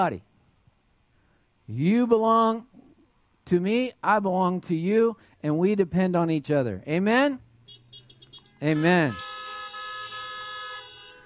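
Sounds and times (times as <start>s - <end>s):
speech: 0.0s - 0.3s, 1.7s - 2.8s, 3.5s - 7.5s, 8.6s - 9.3s
car horns honking: 7.6s - 11.2s.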